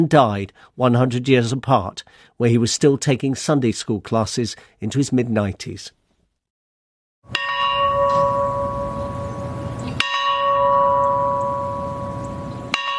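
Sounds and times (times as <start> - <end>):
speech: 0.0 - 6.0, 7.2 - 7.5
large bell tolling in Plains Georgia for a US president: 7.3 - 12.9.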